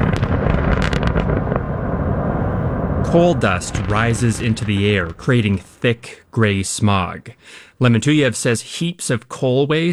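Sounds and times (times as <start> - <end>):
heavy rumbling roar of a large open-pit coal mine blasting explosion: 0.0 - 6.0
sharp crackles and pops: 0.0 - 7.3
speech: 3.1 - 9.9.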